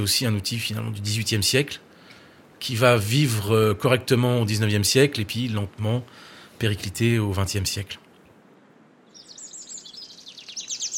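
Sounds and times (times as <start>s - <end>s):
speech: 0.0s - 1.9s, 2.6s - 8.0s
Eurasian wren singing trills and twittering notes: 9.0s - 10.9s.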